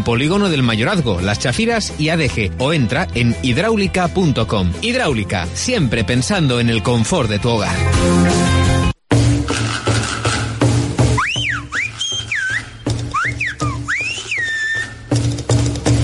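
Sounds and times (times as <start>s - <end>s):
speech: 0.0s - 8.5s
music: 0.0s - 16.0s
Silbo Gomero whistled language: 11.1s - 15.1s.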